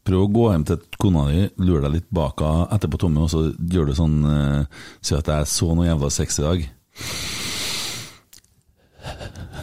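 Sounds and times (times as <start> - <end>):
speech: 0.1 - 7.3
voice imitating a forceful exhale through the nose: 7.0 - 8.3.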